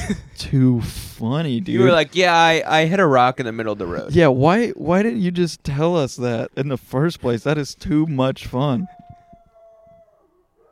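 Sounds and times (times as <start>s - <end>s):
speech: 0.1s - 9.0s
dog howling outdoors in neighbor's yard: 8.8s - 10.7s.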